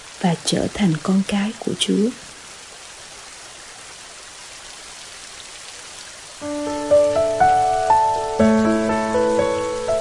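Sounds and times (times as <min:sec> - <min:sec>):
heavy rain pouring: 0:00.0 - 0:09.9
speech: 0:00.2 - 0:02.2
gentle melodic notes: 0:06.4 - 0:09.9.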